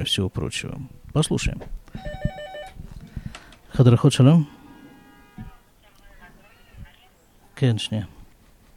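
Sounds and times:
speech: 0.0s - 2.1s, 3.8s - 4.6s, 7.6s - 8.2s
telephone ringing with rapid electronic trill in a large busy polyclinic: 2.0s - 2.8s.

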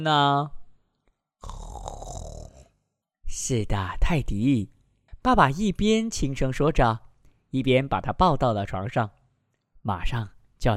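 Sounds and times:
speech: 0.0s - 0.6s, 3.4s - 9.2s, 9.8s - 10.7s
person performing a drawn-out yawn: 1.4s - 2.8s
quiet breath: 7.2s - 7.5s.

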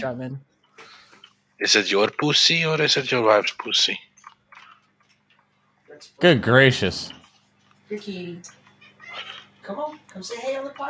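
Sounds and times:
speech: 0.0s - 0.5s, 1.6s - 4.1s, 6.0s - 7.2s, 7.9s - 8.6s, 9.2s - 10.8s
low electrical hum: 0.0s - 10.8s
cat meowing: 8.8s - 9.5s.

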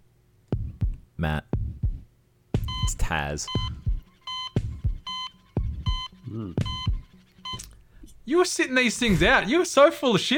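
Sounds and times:
speech: 1.2s - 1.5s, 3.1s - 3.7s, 6.3s - 6.7s, 8.3s - 10.3s
electronic beeps in a wrestler's entrance theme: 2.6s - 7.8s.

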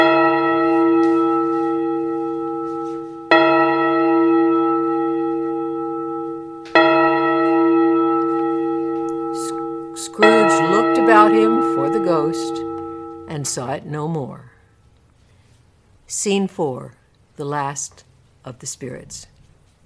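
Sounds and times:
church bell tolling with rich humming resonance: 0.0s - 14.0s
speech: 12.2s - 12.6s, 13.4s - 14.5s, 16.1s - 19.3s.

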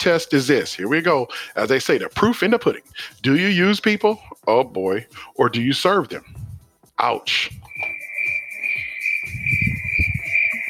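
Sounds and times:
speech: 0.0s - 6.4s, 7.0s - 8.0s
high-pitched cricket trill: 7.7s - 10.6s.

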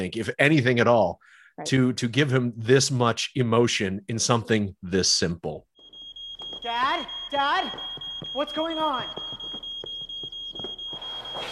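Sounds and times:
speech: 0.0s - 5.7s, 6.7s - 9.3s
soft rhythmic knocks: 5.8s - 11.2s
kitchen smoke alarm sounding a high-pitched tone: 5.8s - 11.4s.

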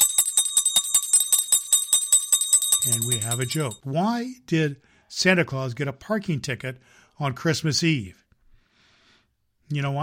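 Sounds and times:
sleigh bells ringing: 0.0s - 3.8s
speech: 2.8s - 8.2s, 9.7s - 10.0s.

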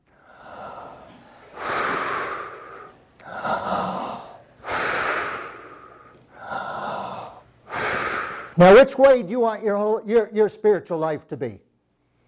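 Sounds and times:
heavy breathing: 0.0s - 8.6s
speech: 8.6s - 11.6s.

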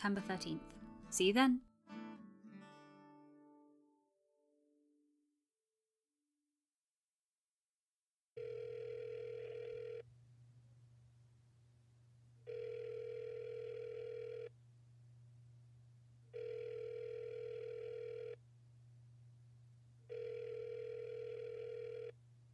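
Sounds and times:
speech: 0.0s - 2.0s
phone electronic ring tones: 8.4s - 10.1s, 12.5s - 14.5s, 16.3s - 18.4s, 20.1s - 22.2s.

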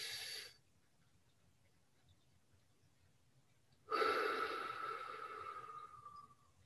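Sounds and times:
person breathing deeply during a breathing exercise: 0.0s - 0.6s, 3.9s - 6.4s.

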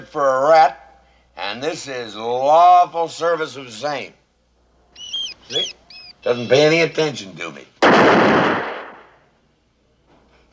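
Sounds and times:
speech: 0.0s - 0.8s, 1.4s - 4.2s, 5.5s - 8.6s
gunshot fired at a rat in a Western film scene: 7.8s - 9.2s.

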